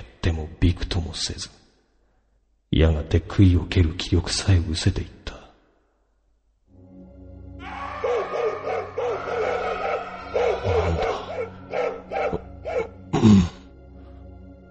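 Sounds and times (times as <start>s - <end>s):
speech: 0.4s - 1.6s, 2.7s - 5.4s
dog barking: 7.6s - 13.0s.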